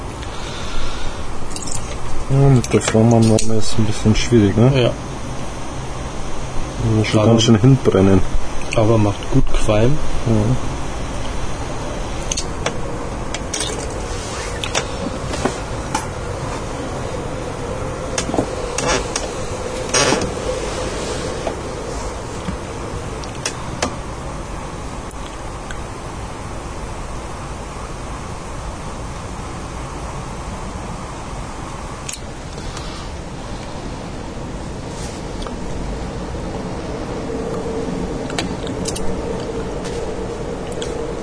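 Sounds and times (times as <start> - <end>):
train rumbling: 0.0 - 41.2
speech: 2.3 - 5.1, 6.8 - 10.8.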